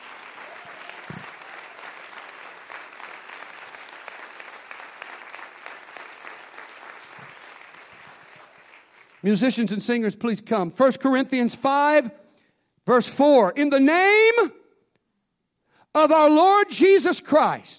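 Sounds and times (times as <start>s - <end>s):
audience clapping in praise: 0.0s - 9.6s
speech: 9.2s - 12.2s, 12.8s - 14.6s, 16.0s - 17.7s.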